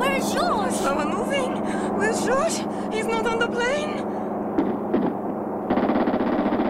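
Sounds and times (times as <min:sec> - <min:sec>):
speech: 0:00.1 - 0:04.1
gunshots: 0:04.5 - 0:06.6.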